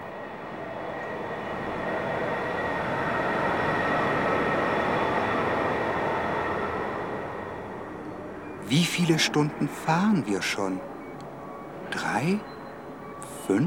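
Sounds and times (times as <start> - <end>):
subway train running underground: 0.0 - 13.6
faint high whine of a subway train: 8.0 - 13.6
speech: 8.7 - 10.9, 12.0 - 12.6, 13.5 - 13.6.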